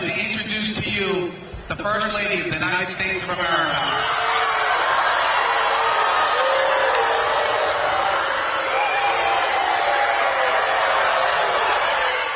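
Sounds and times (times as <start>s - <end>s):
speech: 1.0s - 4.4s
large crowd booing: 3.8s - 12.3s
scattered cheers and whoops: 3.9s - 12.3s.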